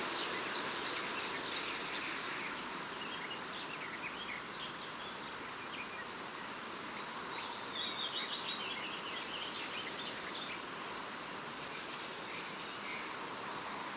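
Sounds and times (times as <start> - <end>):
faint twittering of other birds: 0.0 - 13.8
Eurasian penduline tit Remiz pendulinus giving thin descending whistled calls: 1.2 - 4.7, 5.9 - 11.6, 12.8 - 13.8.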